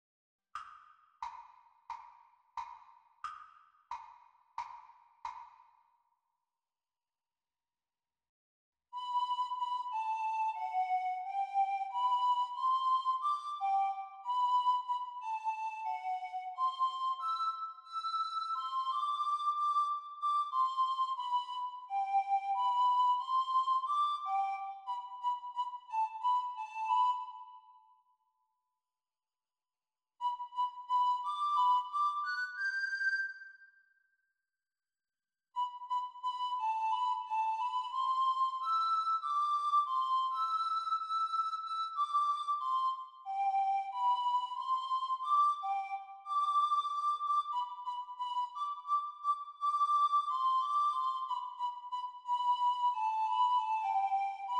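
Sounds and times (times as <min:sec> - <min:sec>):
descant recorder practice playing: 0:09.0 - 0:27.7, 0:30.2 - 0:33.3, 0:35.6 - 0:54.5.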